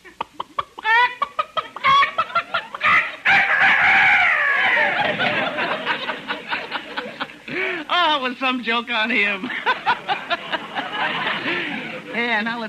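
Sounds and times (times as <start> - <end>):
rooster clucking: 0.0 - 6.6
laughter: 0.0 - 7.9, 9.4 - 12.4
rooster crowing: 1.8 - 6.1
speech: 8.2 - 10.4, 12.2 - 12.6.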